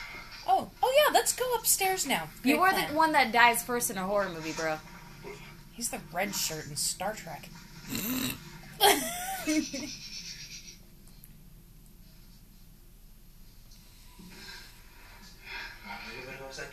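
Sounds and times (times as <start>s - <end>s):
speech: 1.2s - 10.1s
laughter: 8.8s - 10.0s
heavy raspy breathing: 13.9s - 16.4s.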